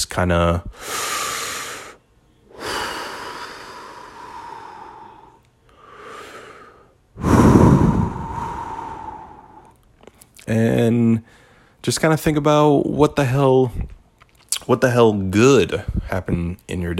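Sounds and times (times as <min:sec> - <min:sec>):
speech: 0:00.0 - 0:00.9, 0:10.5 - 0:14.0, 0:14.6 - 0:16.9
deep slow breathing: 0:00.7 - 0:09.8.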